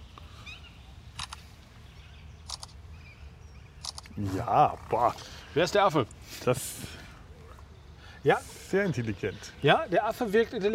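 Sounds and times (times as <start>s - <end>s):
camera shutter clicks taking photos of a monkey: 1.1s - 1.5s, 2.4s - 2.8s, 3.8s - 4.1s
speech: 4.2s - 7.0s, 8.2s - 10.7s.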